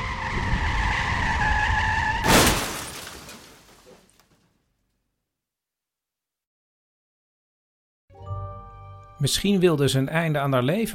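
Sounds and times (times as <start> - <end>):
car tires squealing in a high-pitched skid: 0.0 - 3.0
car crash with breaking debris: 0.0 - 4.4
speech: 9.2 - 10.9.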